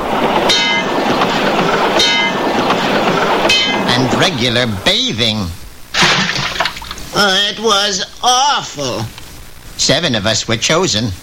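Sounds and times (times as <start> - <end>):
subway train clattering along rails: 0.0 - 5.8
speech: 4.2 - 5.6, 7.2 - 9.2, 9.8 - 11.2.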